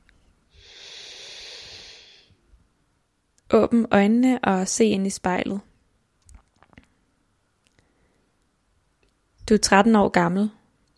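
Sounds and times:
slow deep breath: 0:00.5 - 0:02.4
speech: 0:03.5 - 0:05.7, 0:09.5 - 0:10.6.

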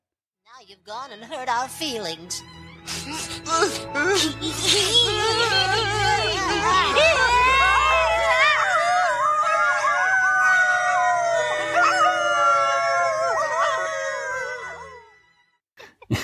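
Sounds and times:
speech: 0:00.6 - 0:07.2
voices of characters howling like sad dogs: 0:05.4 - 0:15.2
laughter: 0:16.0 - 0:16.2.

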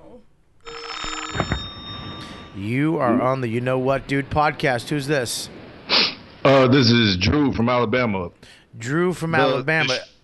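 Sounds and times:
telephone ringing with electronic tone: 0:00.6 - 0:02.9
speech: 0:02.6 - 0:05.6, 0:06.6 - 0:10.2.

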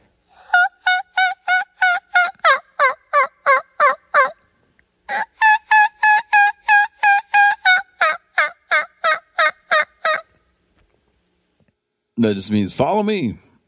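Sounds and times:
turkey hen kiki run call: 0:00.4 - 0:04.4, 0:05.1 - 0:10.4
speech: 0:12.2 - 0:13.5.

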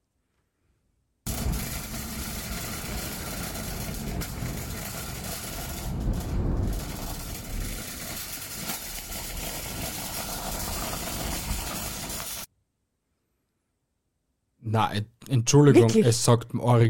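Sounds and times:
shopping cart wheels rattling over street pavement: 0:01.3 - 0:12.5
speech: 0:14.8 - 0:16.8.

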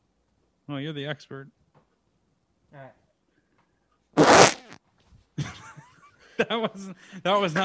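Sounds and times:
speech: 0:00.7 - 0:01.6, 0:02.7 - 0:03.0, 0:06.4 - 0:07.6
loud fart into the microphone: 0:04.2 - 0:04.8
laughter: 0:05.4 - 0:07.6.

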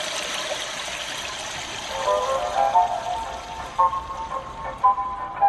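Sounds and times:
device mimicking continuous toilet flushing: 0:00.0 - 0:05.4.

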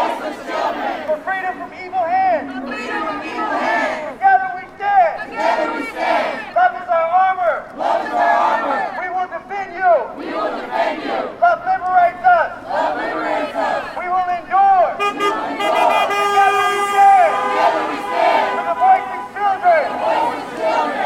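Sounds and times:
crowd chanting rhythmically in unison: 0:00.0 - 0:06.7, 0:07.4 - 0:21.0
passing traffic: 0:00.0 - 0:21.0
car horn honking in a long steady blare: 0:14.9 - 0:19.8.

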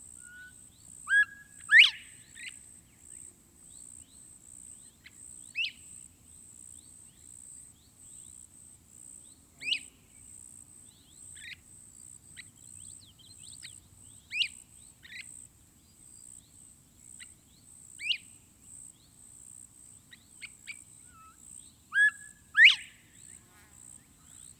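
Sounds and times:
crickets droning outdoors: 0:00.0 - 0:24.5
quail whistling: 0:00.2 - 0:02.1, 0:21.1 - 0:23.0.

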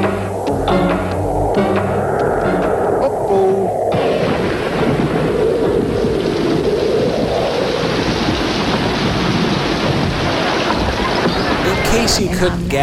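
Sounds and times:
deep rumbling thunder: 0:00.0 - 0:12.2
heavy rain pouring: 0:00.0 - 0:12.8
speech: 0:12.4 - 0:12.8.

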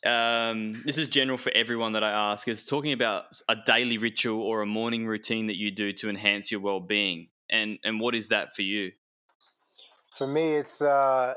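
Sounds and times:
speech: 0:00.0 - 0:09.0, 0:10.2 - 0:11.3
birds chirping and twittering: 0:09.3 - 0:10.9.

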